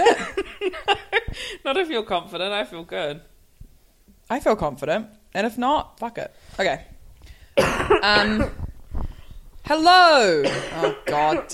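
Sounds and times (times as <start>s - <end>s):
speech: 1.7s - 3.3s, 4.3s - 6.9s, 7.6s - 9.1s, 9.7s - 11.5s
harsh cough breaking into a raspy whistling wheeze: 7.6s - 8.7s, 10.4s - 11.5s.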